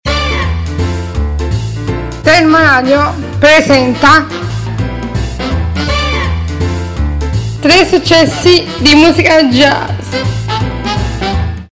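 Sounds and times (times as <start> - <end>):
jazz jingle: 0.1 - 11.7.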